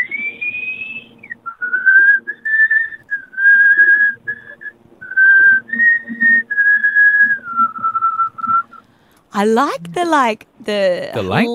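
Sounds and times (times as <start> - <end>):
person whistling a long continuous tune: 0.0 - 8.8
speech: 9.4 - 11.5.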